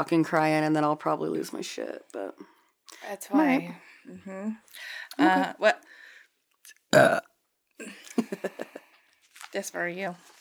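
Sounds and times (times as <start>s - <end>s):
speech: 0.0s - 6.0s, 6.9s - 8.7s, 9.5s - 10.3s
deep rumbling belch: 6.9s - 7.3s
laughter: 7.8s - 8.9s.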